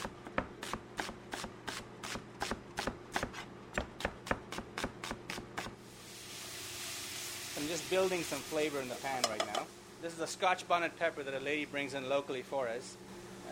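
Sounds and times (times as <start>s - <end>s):
knife slicing an onion for rice pilaf: 0.0s - 5.8s
speech: 7.7s - 13.0s.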